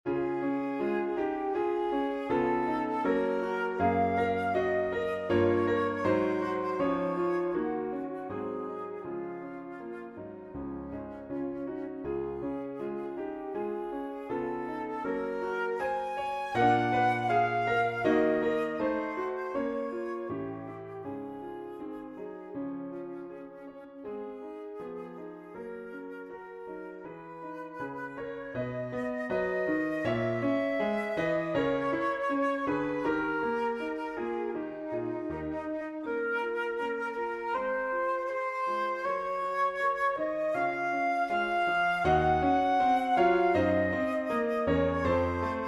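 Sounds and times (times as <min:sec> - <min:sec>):
flute: 0:00.0 - 0:45.6
piano: 0:00.0 - 0:45.6.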